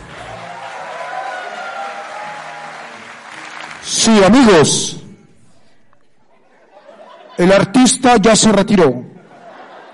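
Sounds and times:
cheering: 0.0s - 4.1s
crowd applauding: 0.0s - 4.4s
speech: 3.8s - 5.0s, 7.4s - 9.1s
laughter: 6.2s - 7.8s, 9.2s - 9.9s.

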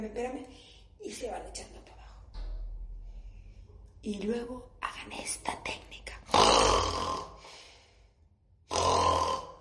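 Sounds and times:
speech: 0.0s - 1.9s, 4.0s - 6.0s
person fake snoring from deep in the chest: 6.3s - 7.5s, 8.7s - 9.5s.

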